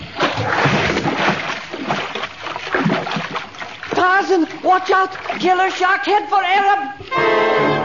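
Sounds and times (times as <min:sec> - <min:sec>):
person plunging into water: 0:00.0 - 0:05.8
water churning and sloshing: 0:00.0 - 0:07.1
speech: 0:04.2 - 0:07.7.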